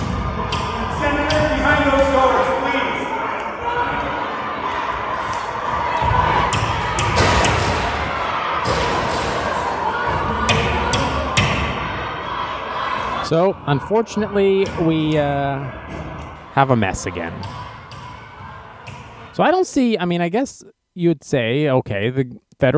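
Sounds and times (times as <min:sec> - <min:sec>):
people shouting: 0:00.0 - 0:15.1, 0:15.8 - 0:19.4
large crowd yelling and chanting: 0:00.0 - 0:19.6
speech: 0:13.3 - 0:17.6, 0:19.4 - 0:22.7.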